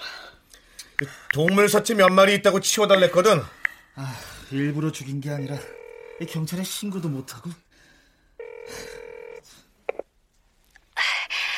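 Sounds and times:
speech: 0:01.0 - 0:07.6, 0:08.7 - 0:08.9
electronic telephone ring tone as a call is placed: 0:05.5 - 0:06.5, 0:08.4 - 0:09.5.

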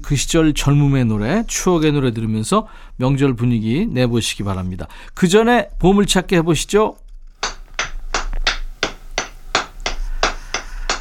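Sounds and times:
speech: 0:00.1 - 0:07.0
blacksmith hammering metal at a forge: 0:07.4 - 0:11.0.

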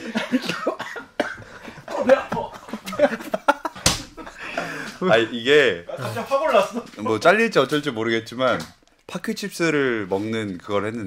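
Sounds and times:
person coughing in loud, harsh bursts: 0:00.0 - 0:01.6
laughter: 0:00.0 - 0:07.0
speech: 0:05.0 - 0:11.0.

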